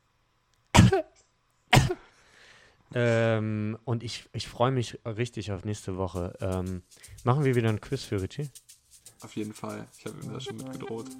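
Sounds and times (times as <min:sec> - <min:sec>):
person coughing: 0:00.8 - 0:02.1
speech: 0:00.9 - 0:02.1, 0:02.9 - 0:11.1.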